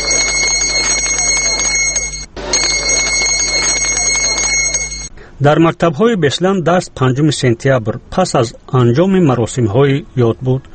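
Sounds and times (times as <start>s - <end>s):
school bell ringing before a memorial ceremony: 0.0s - 5.1s
speech: 5.4s - 10.7s.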